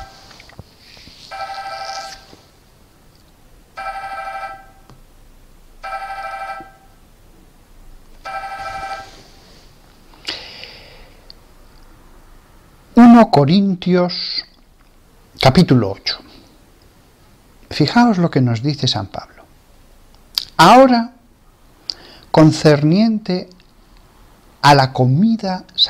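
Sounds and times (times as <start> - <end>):
mobile phone ringing during a lecture: 1.3 - 2.3, 3.8 - 4.8, 5.8 - 6.9, 8.2 - 9.2
speech: 13.2 - 14.5, 15.4 - 16.2, 17.8 - 19.3, 20.6 - 21.2, 22.4 - 23.6, 24.6 - 25.8.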